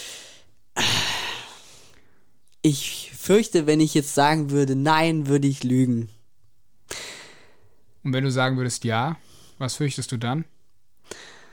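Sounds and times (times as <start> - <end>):
loud breathing while thinking: 0.0 - 2.3, 6.9 - 7.8, 11.0 - 11.5
speech: 2.6 - 6.2, 8.0 - 10.5.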